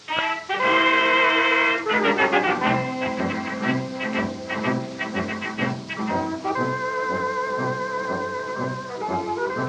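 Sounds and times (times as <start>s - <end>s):
instrumental orchestral dance music from a 1920s record: 0.0s - 9.6s.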